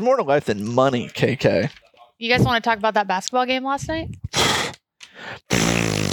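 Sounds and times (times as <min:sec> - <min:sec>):
speech: 0:00.0 - 0:04.5
brief breathy puffs: 0:04.1 - 0:05.5
loud buzzy raspy fart noise: 0:05.5 - 0:06.1.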